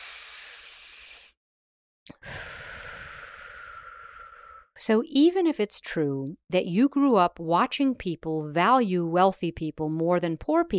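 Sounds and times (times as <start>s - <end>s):
person taking a deep slow breath: 0.0s - 1.4s, 2.1s - 4.8s
speech: 4.8s - 10.7s.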